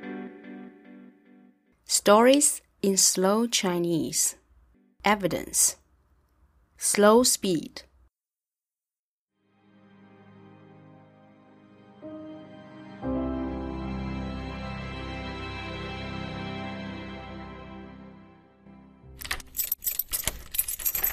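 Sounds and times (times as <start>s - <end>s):
speech: 1.9s - 4.4s, 5.0s - 5.8s, 6.8s - 7.9s
soft sustained musical drone: 9.6s - 18.9s
keys jangling at the door: 19.2s - 21.1s.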